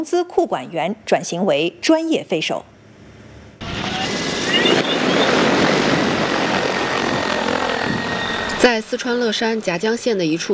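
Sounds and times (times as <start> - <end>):
speech: 0.0 - 2.8, 8.6 - 10.5
wind rush: 3.6 - 8.7
agricultural crop-spraying drone rotors whirring beside a rice paddy in Sichuan: 3.6 - 9.4.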